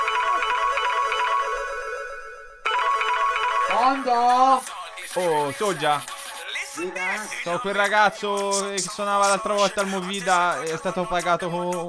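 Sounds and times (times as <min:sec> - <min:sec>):
telephone ringing on an outgoing call: 0:00.0 - 0:07.5
speech: 0:03.8 - 0:06.1, 0:06.8 - 0:11.8.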